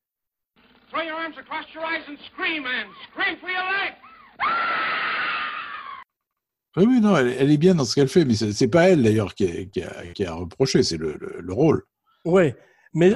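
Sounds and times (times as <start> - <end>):
speech: 1.0 - 4.9, 6.8 - 13.1
woman screaming in terror in a film excerpt: 4.0 - 6.1.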